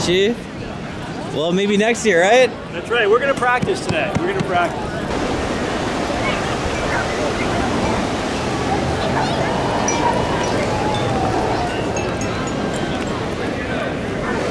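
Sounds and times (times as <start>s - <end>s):
speech: 0.0s - 0.5s, 1.3s - 5.0s
faint voices: 0.0s - 14.4s
ocean waves breaking on a beach: 2.7s - 14.4s
wind buffeting the microphone: 3.2s - 14.4s.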